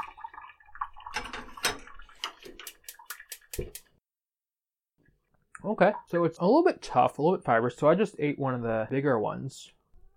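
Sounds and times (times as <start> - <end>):
water pouring from a tap into a pot to be boiled: 0.0 - 4.0
speech: 5.6 - 9.8.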